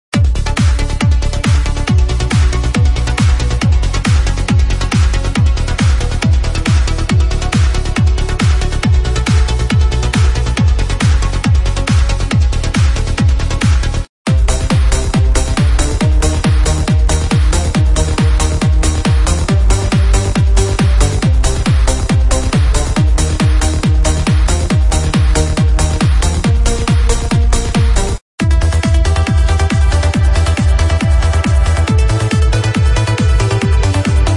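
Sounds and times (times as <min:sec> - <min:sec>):
uplifting trance music: 0:00.2 - 0:34.3.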